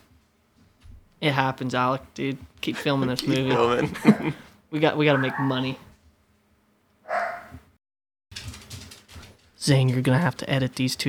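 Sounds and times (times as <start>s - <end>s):
speech: 1.2s - 5.9s, 9.6s - 11.0s
laughter: 2.6s - 5.7s
dog barking: 3.3s - 4.4s, 5.0s - 5.8s, 7.1s - 7.6s.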